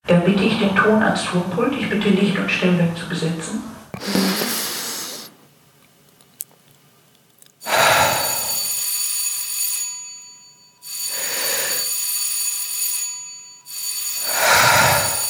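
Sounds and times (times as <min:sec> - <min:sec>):
speech: 0:00.2 - 0:04.6
electric theatre bell signal ringing: 0:07.7 - 0:15.2.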